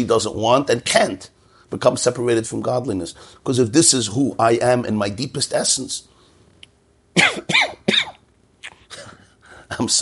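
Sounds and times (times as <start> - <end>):
speech: 0.0 - 6.1, 7.2 - 7.9, 9.7 - 10.0
person coughing: 7.2 - 9.2.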